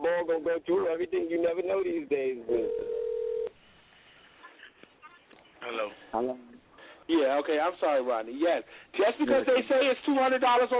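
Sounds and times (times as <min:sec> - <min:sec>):
speech: 0:00.3 - 0:03.0, 0:05.7 - 0:06.5, 0:07.1 - 0:10.7
loud steady telephone tone: 0:02.5 - 0:03.5.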